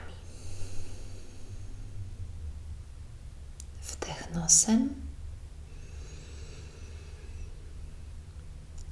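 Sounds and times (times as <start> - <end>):
slow breathy exhale through the mouth: 0.0 - 2.2, 5.6 - 7.9
low steady hum: 0.0 - 8.9
speech: 4.3 - 5.0.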